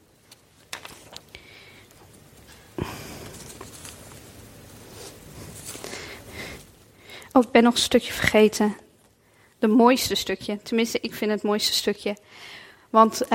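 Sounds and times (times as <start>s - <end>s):
paper rustling and shuffling: 0.1s - 6.8s
paper page turning: 0.2s - 1.4s, 2.0s - 6.1s
speech: 7.4s - 8.8s, 9.6s - 13.3s.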